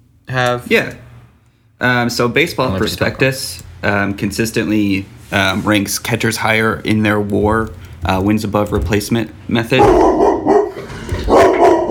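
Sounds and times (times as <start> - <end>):
speech: 0.3 - 1.0, 1.8 - 10.2
dog barking: 9.8 - 11.8.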